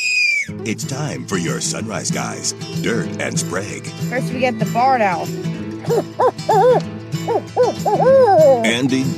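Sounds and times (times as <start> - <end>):
speech: 0.6 - 9.1
American woodcock calling in nasal notes: 5.8 - 8.7.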